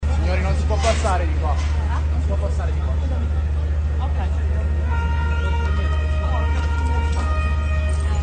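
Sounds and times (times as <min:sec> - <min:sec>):
heavy low rumble of street noise and traffic: 0:00.0 - 0:08.2
speech: 0:00.6 - 0:03.4
emergency vehicle sirens wailing during street clashes: 0:02.8 - 0:08.2
honking-like blasts: 0:04.6 - 0:08.2.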